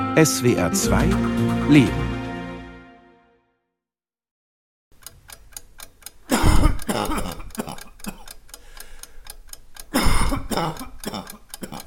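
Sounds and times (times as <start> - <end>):
speech: 0.2 - 2.1
steady clock ticking: 4.9 - 11.8
dry irritable hacking coughing: 6.3 - 8.4, 9.9 - 11.8.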